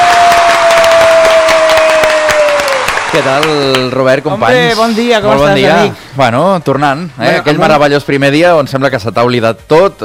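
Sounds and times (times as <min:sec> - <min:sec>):
studio audience clapping: 0:00.0 - 0:04.2
speech: 0:03.1 - 0:10.0.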